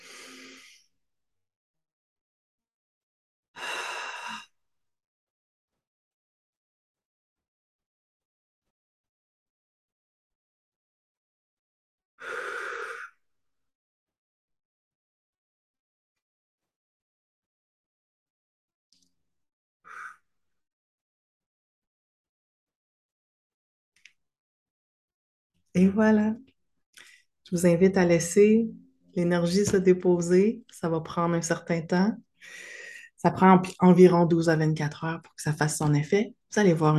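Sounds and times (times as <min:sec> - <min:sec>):
deep breaths drawn and released slowly: 0:12.2 - 0:13.2, 0:32.4 - 0:33.2
speech: 0:25.8 - 0:26.5, 0:27.5 - 0:36.9.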